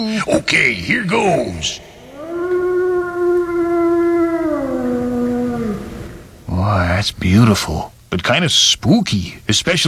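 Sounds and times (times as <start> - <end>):
speech: 0.0 - 1.9, 6.7 - 9.8
wolf howling: 2.0 - 6.4.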